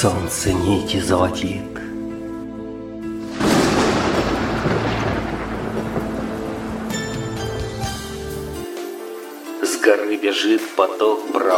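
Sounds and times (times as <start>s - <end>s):
speech: 0.0s - 1.9s, 10.1s - 11.5s
rolling thunder: 3.2s - 7.9s
faint hiss of rain: 3.2s - 11.5s.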